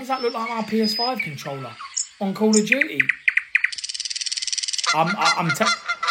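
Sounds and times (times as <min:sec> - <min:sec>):
speech: 0:00.0 - 0:03.3, 0:04.9 - 0:06.0
Canada goose honking: 0:04.8 - 0:06.0.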